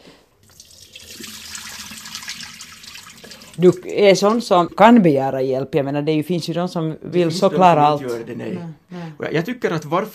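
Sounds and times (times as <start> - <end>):
water running from a tap into a sink or container: 0.4 - 4.8
speech: 3.6 - 10.1.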